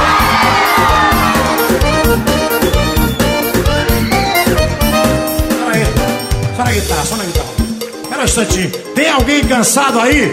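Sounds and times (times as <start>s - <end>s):
live audience shouting back in a loud burst: 0.0s - 3.3s
driving band playing a steady pounding beat: 0.0s - 10.3s
speech: 8.2s - 10.3s.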